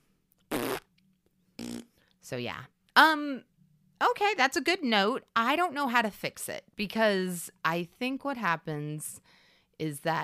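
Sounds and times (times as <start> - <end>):
buzzy raspberry blown with the mouth imitating a fart: 0.5 - 0.9, 1.6 - 2.0
speech: 2.2 - 3.5, 4.1 - 10.2.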